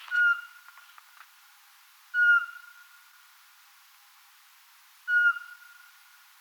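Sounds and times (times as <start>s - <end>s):
Eurasian pygmy owl uttering piping whistled notes: 0.0s - 0.5s, 2.1s - 2.7s, 5.1s - 5.8s.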